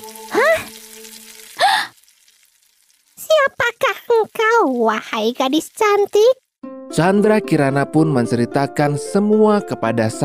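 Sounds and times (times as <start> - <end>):
food sizzling and hissing in a hot pan: 0.0 - 6.6
speech: 4.6 - 10.2.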